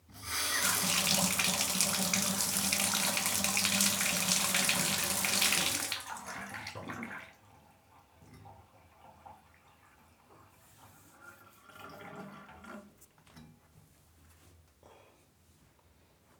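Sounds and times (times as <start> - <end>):
bathtub draining: 0.0 - 13.0
bathtub tap turning quickly on and off: 0.5 - 6.6.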